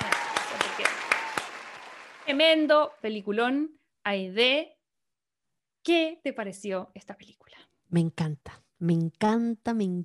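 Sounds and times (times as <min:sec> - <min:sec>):
hands clapping in applause: 0:00.0 - 0:02.8
speech: 0:02.3 - 0:04.8, 0:05.8 - 0:10.0.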